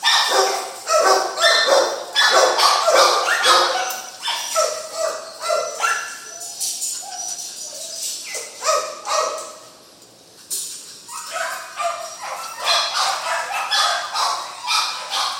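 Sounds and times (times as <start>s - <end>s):
dog barking and yelping in a kennel: 0.0s - 9.6s, 11.1s - 15.3s.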